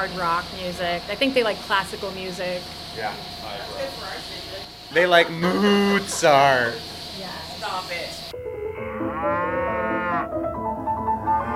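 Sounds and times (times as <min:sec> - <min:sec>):
speech: 0:00.0 - 0:08.4
cows mooing in a barn: 0:08.7 - 0:11.5.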